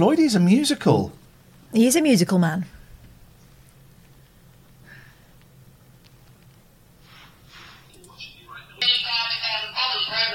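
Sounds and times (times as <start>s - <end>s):
speech: 0.0s - 2.8s
crackly smothered jumble of sound on a phone line: 0.0s - 10.3s
muffled rustling on a pocket-dialled phone call: 2.7s - 8.3s.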